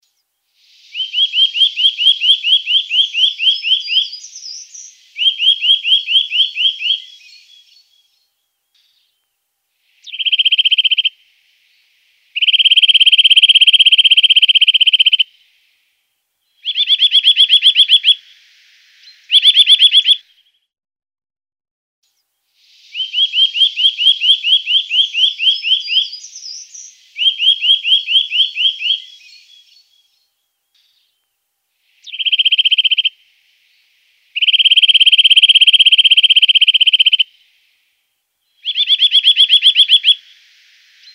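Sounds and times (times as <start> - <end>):
woodpecker bird calls: 1.0 - 7.6, 10.0 - 11.1, 12.4 - 15.3, 16.6 - 18.2, 19.3 - 20.2, 23.0 - 30.1, 32.0 - 33.2, 34.4 - 37.6, 38.5 - 41.1.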